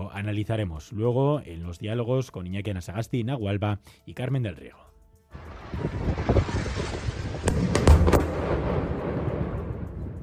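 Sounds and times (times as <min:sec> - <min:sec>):
speech: 0:00.2 - 0:06.1
explosions from aerial bombardment: 0:05.4 - 0:10.2
rumbling windy background: 0:05.4 - 0:10.2.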